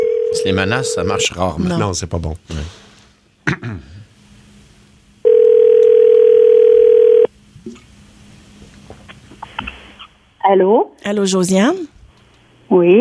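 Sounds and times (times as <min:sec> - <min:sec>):
speech: 0:00.4 - 0:02.8, 0:10.5 - 0:11.9, 0:12.7 - 0:13.0
telephone dial tone while placing a call: 0:05.2 - 0:07.3.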